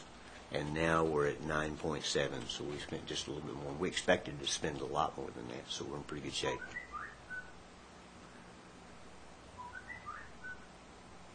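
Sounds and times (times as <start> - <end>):
steady hiss: 0.0 - 11.3
speech: 0.5 - 6.8
pet bird whistling: 6.6 - 7.6, 9.6 - 10.7.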